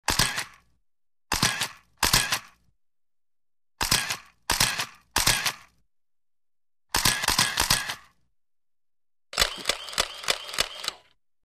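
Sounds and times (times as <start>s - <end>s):
photo camera shutter in a studio: 0.1s - 0.6s, 1.3s - 2.6s, 3.8s - 5.7s, 6.9s - 8.1s, 9.4s - 11.2s.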